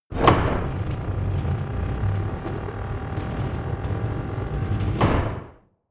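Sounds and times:
medium wooden gate opening: 0.1s - 5.5s.

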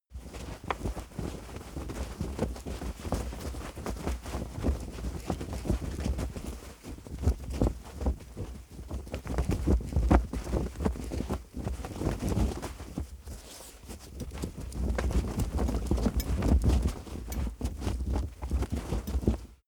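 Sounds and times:
flag flapping: 0.1s - 19.6s.

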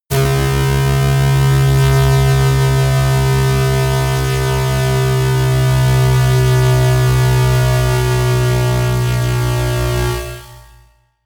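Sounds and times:
slow long bass drop: 0.1s - 11.0s.

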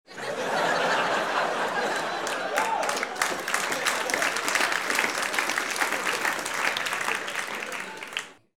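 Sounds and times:
laughter: 0.1s - 5.2s
applause: 1.6s - 8.5s.

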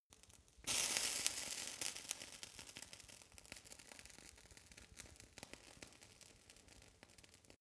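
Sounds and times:
fire torch sizzle with phasing: 0.7s - 2.9s.

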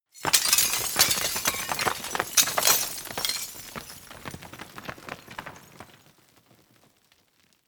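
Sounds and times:
roll falling: 0.2s - 5.9s.

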